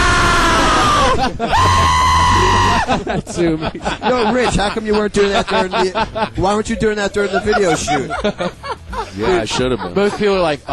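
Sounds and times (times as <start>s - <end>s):
person screaming in imitation of a frightened scream: 0.0s - 2.9s
laughter: 0.7s - 10.7s
speech: 1.2s - 1.7s, 2.9s - 10.7s.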